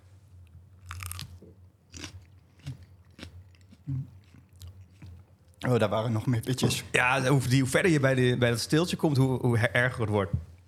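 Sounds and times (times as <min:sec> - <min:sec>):
low steady hum: 0:00.0 - 0:10.6
someone biting into and chewing crunchy food: 0:00.4 - 0:05.7
speech: 0:05.6 - 0:10.5.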